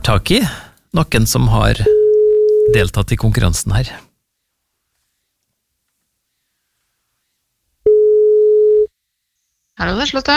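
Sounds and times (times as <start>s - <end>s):
speech: 0.1s - 2.0s, 2.7s - 4.1s, 9.8s - 10.3s
telephone ringing tone while placing a call: 1.9s - 2.8s, 7.9s - 8.9s.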